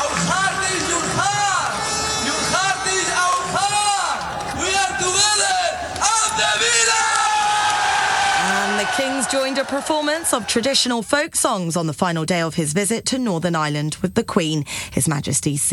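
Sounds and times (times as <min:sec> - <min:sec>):
crowd of thousands of football fans cheering at an open-top bus parade in Birmingham: 0:00.0 - 0:11.2
speech: 0:09.3 - 0:15.7.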